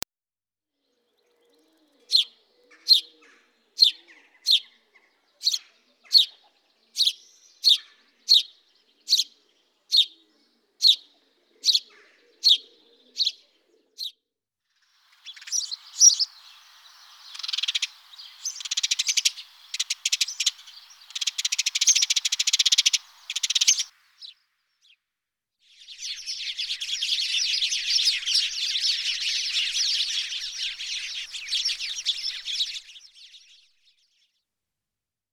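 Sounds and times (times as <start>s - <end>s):
house sparrow chirping: 2.1s - 3.1s, 3.8s - 4.8s, 5.4s - 10.2s, 10.8s - 13.4s, 15.1s - 24.3s, 26.0s - 33.4s.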